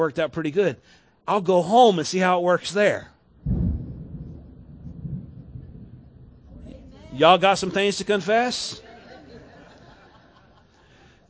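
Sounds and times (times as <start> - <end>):
speech: 0.0 - 3.6, 7.2 - 8.8
deep roll of thunder rumbling: 3.3 - 8.3
laughter: 7.0 - 11.2.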